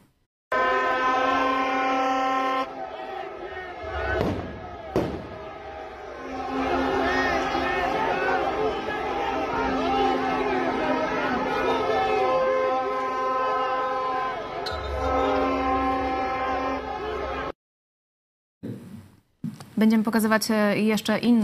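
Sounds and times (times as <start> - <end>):
protest crowd shouting outdoors: 0.5 - 17.6
speech: 19.8 - 21.4.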